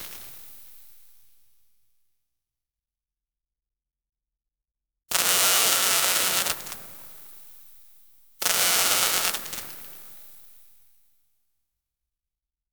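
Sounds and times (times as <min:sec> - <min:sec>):
electric sparks in a fuse box: 0:05.1 - 0:07.7, 0:08.4 - 0:10.7.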